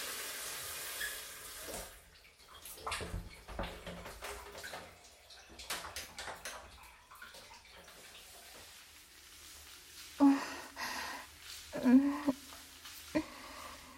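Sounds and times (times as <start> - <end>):
water splashing in a bath while washing a body: 0.0 - 13.9.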